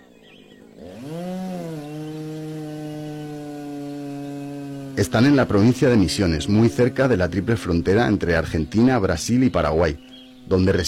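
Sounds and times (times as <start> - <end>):
chainsaw engine revving: 0.0 - 10.8
speech: 5.0 - 10.8.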